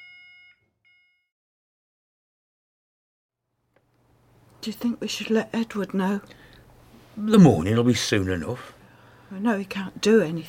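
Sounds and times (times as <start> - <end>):
hospital emergency buzzer alarm: 0.0 - 1.3
speech: 4.6 - 6.4, 7.2 - 10.4.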